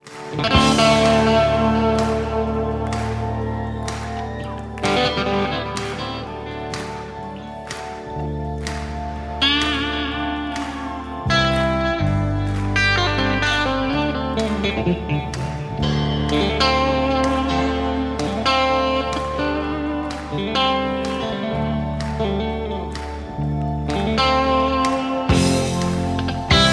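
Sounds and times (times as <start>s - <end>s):
1980 Schecter Strat sunburst electric guitar: 0.0s - 26.7s.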